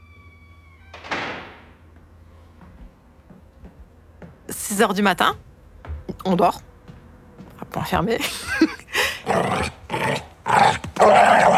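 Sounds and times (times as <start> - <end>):
speech: 4.7 - 5.5, 6.2 - 6.7, 7.8 - 8.8
pitbull growling and barking behind a door: 9.2 - 11.5.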